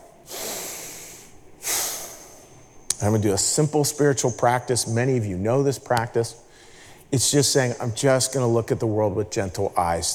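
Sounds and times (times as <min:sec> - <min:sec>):
person taking an audible breath: 0:00.2 - 0:02.6, 0:06.5 - 0:07.1
speech: 0:03.0 - 0:06.4, 0:07.1 - 0:10.1.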